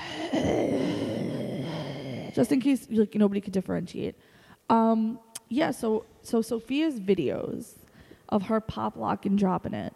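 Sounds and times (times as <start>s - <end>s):
person performing exaggerated heavy breathing: 0.0s - 2.5s
speech: 2.4s - 9.9s.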